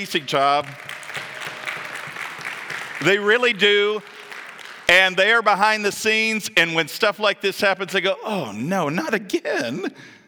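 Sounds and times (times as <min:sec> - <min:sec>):
speech: 0:00.0 - 0:00.9, 0:03.0 - 0:04.1, 0:04.9 - 0:10.2
room full of people clapping: 0:00.0 - 0:05.9.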